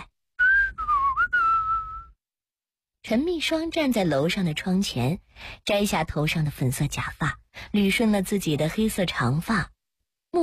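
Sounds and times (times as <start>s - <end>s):
person whistling loudly: 0.4s - 2.2s
speech: 3.1s - 9.7s.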